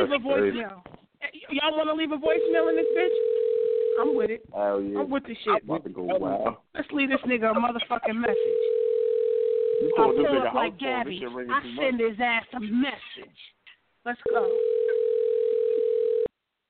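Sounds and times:
speech: 0.0 - 0.9, 1.5 - 3.3, 4.0 - 8.8, 9.8 - 14.9
steady telephone tone from an unanswered call: 2.4 - 4.2, 8.3 - 10.4, 14.3 - 16.3.

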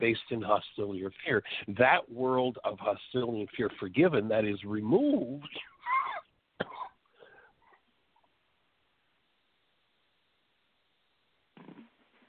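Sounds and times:
speech: 0.0 - 5.7
person coughing: 5.9 - 7.0.

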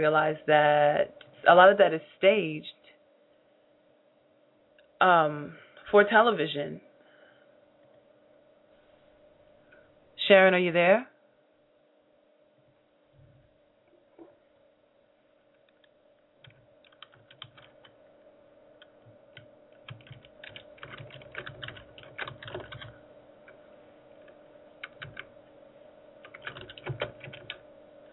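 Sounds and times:
people chatting: 0.0 - 2.8, 5.0 - 6.8, 10.2 - 11.1
speech: 0.0 - 2.8, 5.0 - 6.8, 10.3 - 11.1
faint steady hum: 0.0 - 28.1
typing on a computer keyboard: 16.4 - 18.0, 18.8 - 23.0, 24.8 - 25.3, 26.2 - 28.1.

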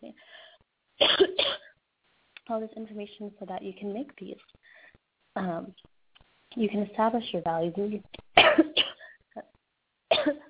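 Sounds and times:
person coughing hard while speaking: 1.0 - 1.7, 8.4 - 9.2, 10.1 - 10.4
speech: 2.5 - 4.8, 5.4 - 5.9, 6.6 - 8.8.

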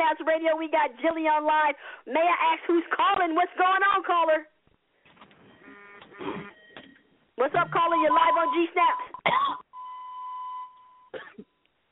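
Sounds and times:
speech: 0.1 - 4.5, 7.4 - 9.6
steady electronic beep tone: 7.6 - 11.1
caller coughing over a tinny phone line: 9.0 - 9.7, 11.1 - 11.6.

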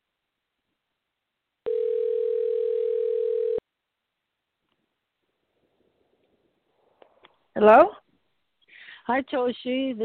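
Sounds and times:
telephone dial tone: 1.7 - 3.6
speech: 7.6 - 8.0, 9.1 - 10.0.

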